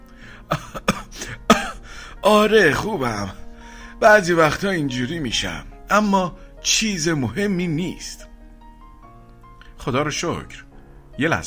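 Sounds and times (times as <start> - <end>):
throat clearing: 0.5 - 1.8
person in a harsh coughing fit: 0.5 - 1.9
speech: 2.2 - 3.4, 4.0 - 8.3, 9.8 - 11.4.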